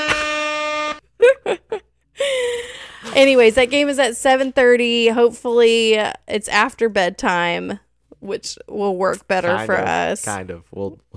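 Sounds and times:
air horn blaring: 0.0s - 1.1s
speech: 3.2s - 11.1s.

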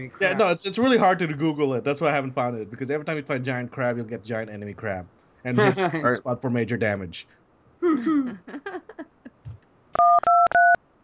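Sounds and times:
speech: 0.0s - 9.1s
telephone keypad tones dialing a number: 10.0s - 10.8s.

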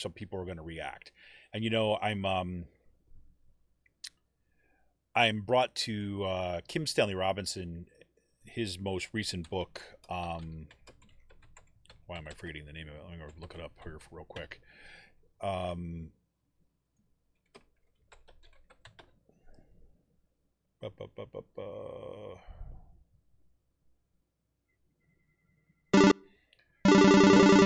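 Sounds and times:
speech: 0.0s - 2.8s, 5.2s - 10.8s, 12.1s - 16.2s, 20.8s - 22.6s
mobile phone ringing: 26.0s - 27.6s.

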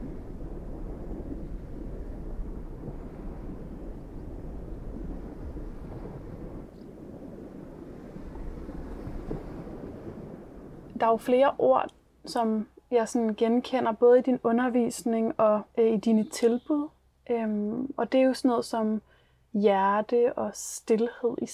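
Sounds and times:
ocean waves roaring: 0.0s - 11.8s
speech: 11.0s - 21.5s.

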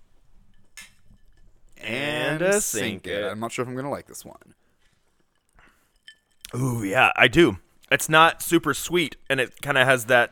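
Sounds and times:
drinking glasses clinking together in a toast: 0.4s - 1.8s, 5.1s - 6.6s
speech: 1.8s - 4.6s, 6.5s - 10.2s.

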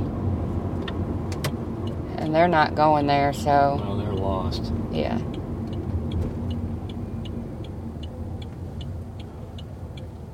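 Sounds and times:
cars rolling along a road: 0.0s - 10.3s
speech: 2.2s - 5.4s.

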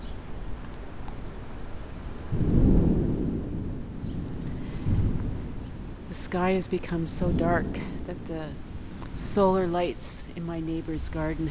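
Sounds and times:
wind moving through leaves on a street: 0.0s - 11.4s
low thunder from the west before a summer storm: 2.3s - 11.4s
speech: 6.2s - 11.4s.

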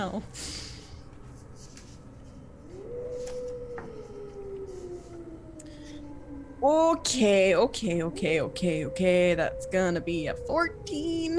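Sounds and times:
speech: 0.0s - 0.6s, 6.6s - 11.3s
wolf howling: 2.5s - 11.3s.

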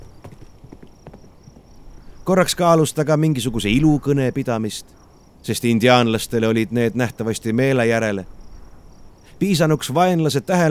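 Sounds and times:
trotting horse hooves clip-clopping: 0.0s - 1.9s
faint hiss: 0.0s - 10.7s
speech: 2.3s - 8.4s, 9.4s - 10.7s.

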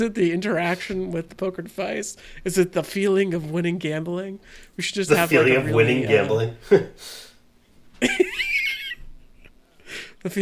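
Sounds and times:
speech: 0.0s - 7.3s, 8.0s - 8.5s, 10.2s - 10.4s
raspy wheezing breath: 9.8s - 10.2s.

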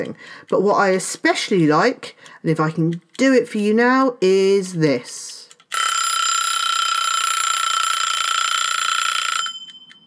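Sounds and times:
speech: 0.0s - 5.4s
mechanical kitchen timer bell ringing: 5.7s - 10.0s.

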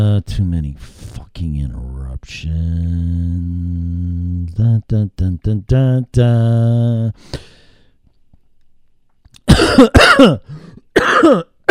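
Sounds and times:
speech: 0.0s - 7.6s, 9.6s - 11.6s
harsh rasping coughs: 9.4s - 11.6s.

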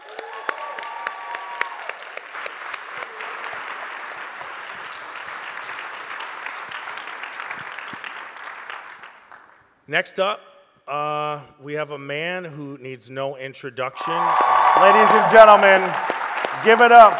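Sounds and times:
faint whistles and cheers from audience: 0.0s - 2.1s, 14.0s - 17.1s
large audience applause: 0.0s - 9.5s, 14.0s - 17.1s
speech: 9.9s - 17.1s.

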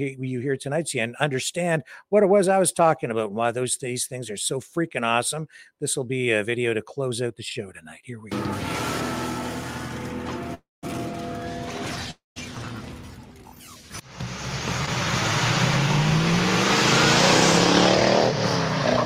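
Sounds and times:
speech: 0.0s - 8.9s
1971 Dodge Challenger muscle car engine idling and revving: 14.0s - 19.0s.

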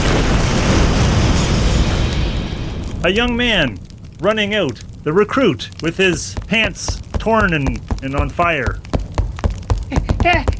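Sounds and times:
massive explosion: 0.0s - 5.1s
speech: 3.0s - 8.8s, 10.2s - 10.5s.

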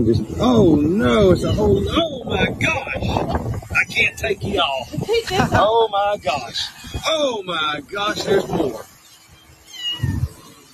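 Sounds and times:
speech: 0.0s - 8.9s
kittens meowing: 9.6s - 10.5s.

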